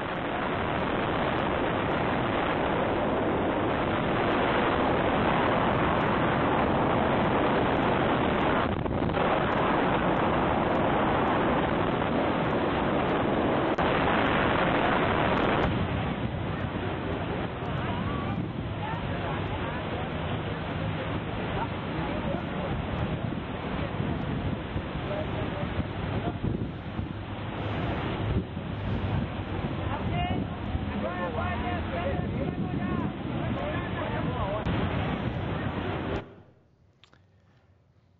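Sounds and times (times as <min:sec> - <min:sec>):
faint voices: 0:00.0 - 0:36.3
wind buffeting the microphone on the Iguazu River in Brazil: 0:00.0 - 0:36.3
churning water of the Iguazu River in Brazil: 0:00.0 - 0:36.4
boat with two 400-horsepower motors droning: 0:00.0 - 0:36.5.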